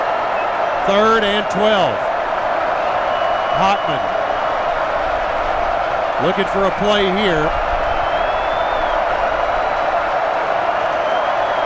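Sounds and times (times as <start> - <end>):
stadium crowd cheering at an American football game: 0.0 - 11.6
speech: 0.8 - 2.1, 3.6 - 4.2, 6.2 - 7.6.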